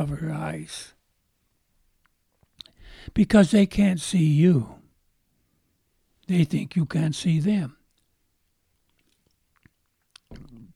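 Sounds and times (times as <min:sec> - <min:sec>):
speech: 0:00.0 - 0:01.0, 0:03.0 - 0:04.8, 0:06.3 - 0:07.8
wet mouth clicks: 0:02.6 - 0:02.8, 0:08.9 - 0:10.7
person sipping a drink: 0:08.9 - 0:10.7
gulping swallow: 0:10.2 - 0:10.7.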